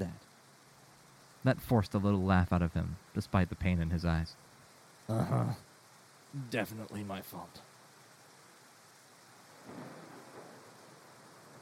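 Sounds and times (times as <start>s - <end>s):
steady rain: 0.0s - 11.5s
speech: 1.4s - 4.5s, 5.1s - 5.7s, 6.3s - 7.7s
low roll of thunder: 9.6s - 11.5s.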